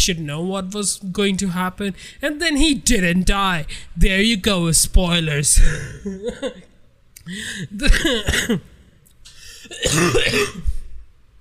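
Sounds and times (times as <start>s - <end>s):
speech: 0.0s - 8.7s, 9.7s - 10.7s
person coughing harshly: 5.6s - 6.7s, 7.6s - 10.9s
throat clearing: 7.8s - 8.8s, 9.6s - 10.8s.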